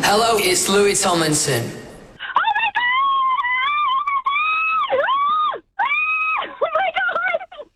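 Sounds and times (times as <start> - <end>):
speech: 0.1 - 1.9
woman screaming excitedly: 2.4 - 7.2.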